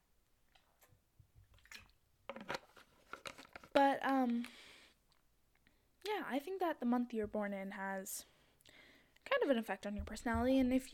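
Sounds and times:
plastic water bottle crinkling and squeezing while being opened: 1.6 - 4.6
speech: 3.8 - 4.6, 6.2 - 8.3, 9.4 - 10.9.

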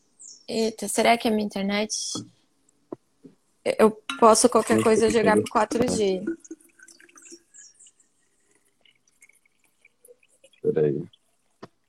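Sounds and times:
speech: 0.5 - 2.4, 3.6 - 6.6, 10.6 - 11.2
water pouring into a glass: 4.3 - 11.6.

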